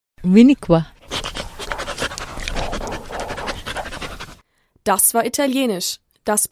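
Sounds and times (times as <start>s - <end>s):
speech: 0.2s - 0.9s, 4.8s - 6.5s
guide dog in training panting rapidly: 1.0s - 4.4s.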